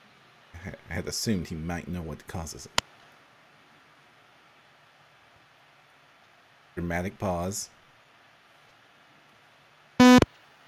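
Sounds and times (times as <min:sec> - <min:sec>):
speech: 0:00.6 - 0:02.8, 0:06.8 - 0:07.8
loud buzzy electronic beep: 0:10.0 - 0:10.2.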